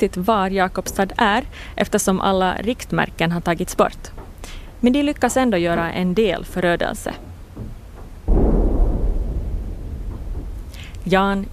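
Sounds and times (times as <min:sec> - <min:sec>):
speech: 0:00.0 - 0:04.2, 0:04.8 - 0:07.7, 0:11.0 - 0:11.5
long dull low rumble: 0:08.2 - 0:11.5
distant cannon shot: 0:08.3 - 0:10.9.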